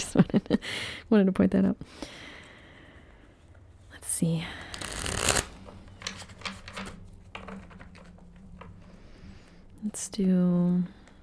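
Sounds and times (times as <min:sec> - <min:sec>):
speech: 0:00.0 - 0:02.2, 0:04.2 - 0:04.6, 0:09.8 - 0:11.0
tarot cards being shuffled during a reading: 0:04.6 - 0:09.0.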